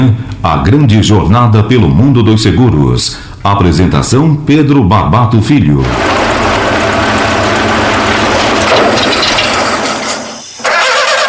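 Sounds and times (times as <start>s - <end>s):
speech: 0.0s - 6.5s
car engine cranking without starting: 5.8s - 11.2s.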